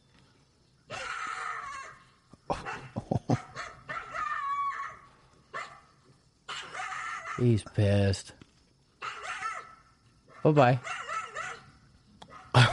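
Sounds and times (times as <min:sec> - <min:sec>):
frantic high-pitched cries: 0:00.9 - 0:02.2, 0:03.4 - 0:05.2, 0:06.5 - 0:07.5, 0:09.0 - 0:09.9
several dogs barking and yipping while chasing a coyote: 0:00.9 - 0:07.5, 0:09.0 - 0:12.7
speech: 0:07.4 - 0:08.4, 0:10.5 - 0:11.0.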